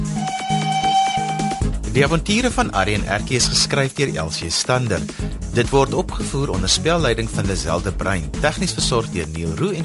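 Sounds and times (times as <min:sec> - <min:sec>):
toy train whistle with a shrill tone: 0:00.2 - 0:01.7
speech: 0:02.0 - 0:09.8.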